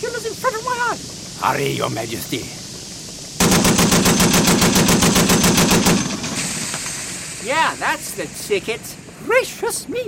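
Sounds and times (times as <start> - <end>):
speech: 1.4 - 2.6, 7.4 - 10.0
forward gun firing a rapid burst: 3.4 - 6.6.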